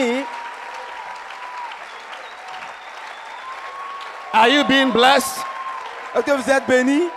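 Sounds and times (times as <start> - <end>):
audience clapping: 0.0 - 7.1
whistling: 1.6 - 5.2
speech: 4.4 - 5.5, 6.1 - 7.1.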